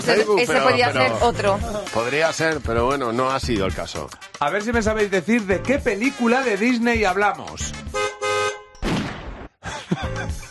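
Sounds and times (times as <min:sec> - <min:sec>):
speech: 0:00.0 - 0:07.9
car horn honking: 0:07.8 - 0:08.7
gunshot: 0:08.8 - 0:09.6
laughter: 0:09.6 - 0:10.4.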